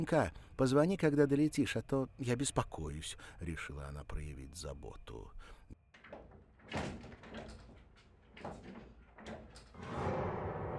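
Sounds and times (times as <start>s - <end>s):
speech: 0.0s - 7.0s
spring-loaded door swinging back shut: 6.0s - 9.8s.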